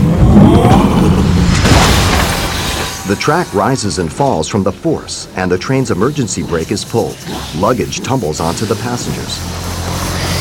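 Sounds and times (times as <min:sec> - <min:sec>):
earthquake rumble with a shockwave: 0:00.0 - 0:05.4
speech: 0:03.1 - 0:10.0.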